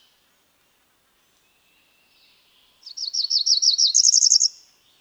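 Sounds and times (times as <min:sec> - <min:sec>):
female cerulean warbler singing: 0:02.9 - 0:04.6.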